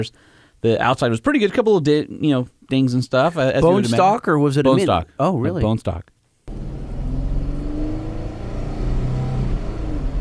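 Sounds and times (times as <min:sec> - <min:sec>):
speech: 0:00.0 - 0:06.2
pickup truck V6 engine accelerating: 0:06.5 - 0:10.1
rumbling road noise: 0:06.5 - 0:10.1.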